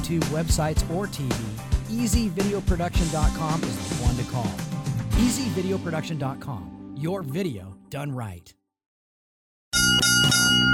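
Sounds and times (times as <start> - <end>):
speech: 0.1 - 8.6
bright bell struck to mark a boxing round: 9.8 - 10.7.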